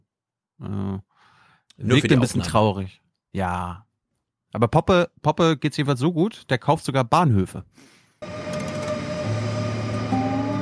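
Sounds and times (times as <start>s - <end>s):
speech: 0.6s - 1.1s, 1.8s - 3.9s, 4.5s - 8.4s
brief high metallic squeal: 8.2s - 10.6s
sustained tonal hums: 8.2s - 10.6s
train rumbling at a railway station platform: 8.2s - 10.6s.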